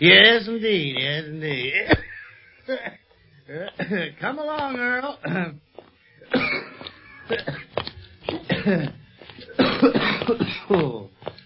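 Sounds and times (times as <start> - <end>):
speech: 0.0 - 2.1, 2.7 - 5.6, 7.3 - 7.6, 8.6 - 9.0, 9.8 - 11.1
man faking a coughing fit: 3.6 - 4.2, 6.2 - 11.0.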